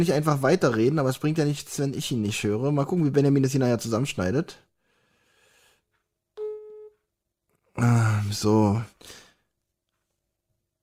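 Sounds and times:
speech: 0:00.0 - 0:04.7, 0:07.8 - 0:09.2
phone call ringing tone: 0:06.4 - 0:07.0.

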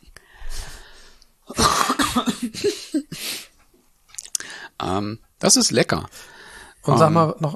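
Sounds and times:
soft breaths: 0:00.0 - 0:01.4, 0:04.4 - 0:04.8, 0:06.1 - 0:06.9
person coughing: 0:01.5 - 0:03.2
speech: 0:05.0 - 0:07.5.

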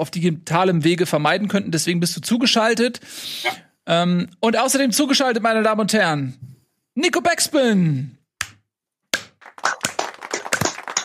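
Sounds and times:
speech: 0:00.0 - 0:08.2
single person clapping hands: 0:08.4 - 0:11.0.

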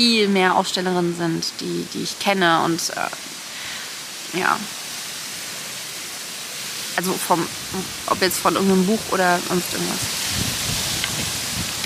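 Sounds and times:
speech: 0:00.0 - 0:03.3, 0:04.3 - 0:04.8, 0:07.0 - 0:10.5
strong wind buffeting the microphone: 0:07.3 - 0:11.8.

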